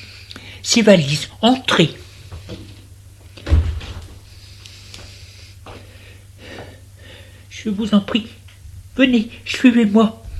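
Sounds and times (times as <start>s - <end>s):
speech: 0.6s - 2.6s, 7.6s - 8.4s, 9.0s - 10.2s
door opening with a dull thump and a short creak: 3.4s - 4.2s.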